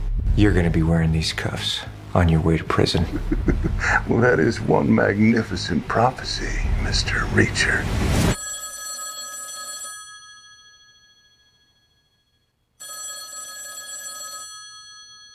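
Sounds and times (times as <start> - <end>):
speech: 0.4 - 8.3
laughter: 2.8 - 4.7
old-style telephone bell ringing: 8.4 - 15.3.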